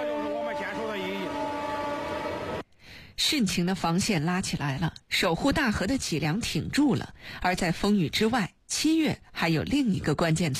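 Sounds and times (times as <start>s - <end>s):
train rumbling past at night on a railway line in Henan: 0.0s - 2.6s
speech: 3.2s - 10.5s.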